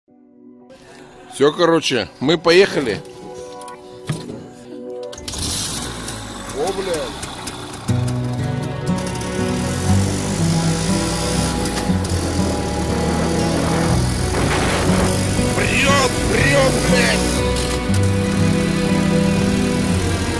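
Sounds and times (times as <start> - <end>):
speech: 0.8 - 3.1
motorcycle engine revving while riding: 5.2 - 20.3.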